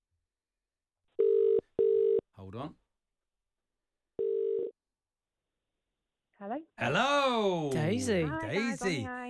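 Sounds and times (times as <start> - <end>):
phone ringing tone as a call is made back: 1.2 - 2.2, 4.2 - 4.8
speech: 2.5 - 2.8, 6.4 - 9.2.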